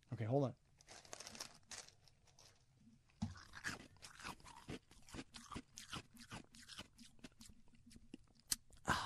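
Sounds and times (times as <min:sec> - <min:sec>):
speech: 0:00.1 - 0:01.0
person chewing ice: 0:03.3 - 0:08.8.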